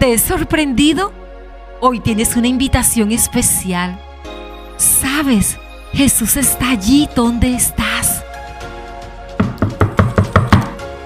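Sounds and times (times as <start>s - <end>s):
speech: 0.0s - 1.2s, 1.8s - 4.1s, 4.8s - 7.9s
quick knocks on a wooden door: 9.4s - 10.8s.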